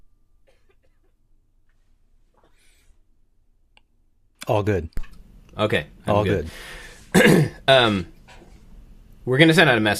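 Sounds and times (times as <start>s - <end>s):
low hum: 0.0s - 9.9s
person coughing: 0.4s - 1.2s, 7.1s - 7.6s
speech: 4.5s - 8.1s, 9.3s - 9.9s.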